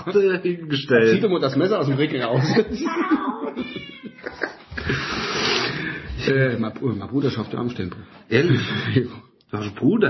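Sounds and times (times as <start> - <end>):
speech: 0.0 - 10.0
laughter: 2.1 - 5.2
cat yowling: 3.0 - 4.6.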